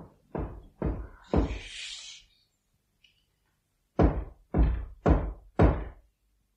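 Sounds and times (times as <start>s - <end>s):
heavy knocking on a door in a high-vaulted Gothic room: 0.0s - 1.6s, 4.0s - 6.1s.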